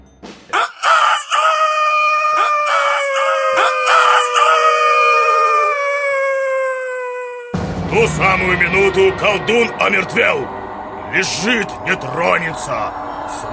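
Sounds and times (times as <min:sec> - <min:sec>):
rooster crowing: 0:00.5 - 0:07.6
speech: 0:08.0 - 0:13.5.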